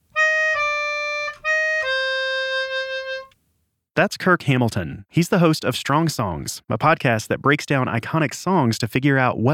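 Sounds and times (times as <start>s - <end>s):
melodica playing a four-note motif: 0.1s - 3.4s
speech: 4.0s - 9.5s.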